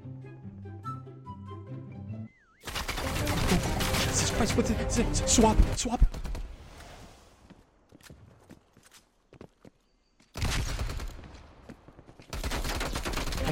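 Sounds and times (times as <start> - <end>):
gunfire in a video game: 2.6 - 4.4, 10.4 - 13.5
speech: 4.2 - 6.2.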